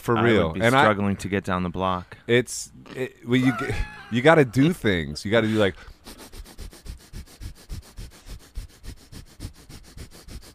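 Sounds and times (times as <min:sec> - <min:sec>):
speech: 0:00.0 - 0:06.3
laughter: 0:03.4 - 0:05.8
breath of fire yoga breathing with rapid forceful nasal breaths: 0:05.4 - 0:10.5.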